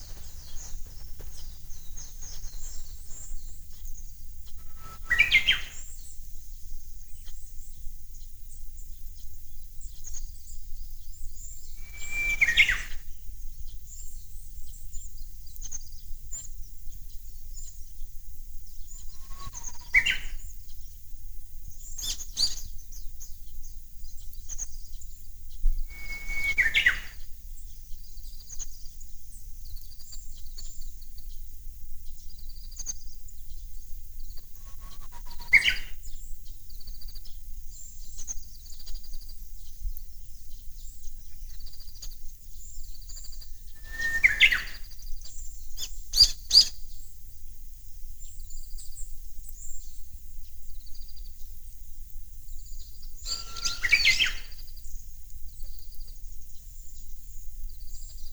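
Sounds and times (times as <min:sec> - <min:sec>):
Japanese bush warbler singing: 0:00.0 - 0:06.2, 0:11.4 - 0:13.1, 0:18.9 - 0:20.6, 0:21.8 - 0:27.2, 0:32.2 - 0:39.2, 0:40.1 - 0:47.1, 0:52.4 - 0:58.3.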